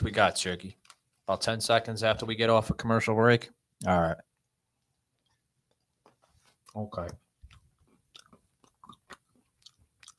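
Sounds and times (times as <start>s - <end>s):
speech: 0.0s - 4.3s, 6.8s - 7.2s
salted peanuts being chewed: 6.6s - 10.1s.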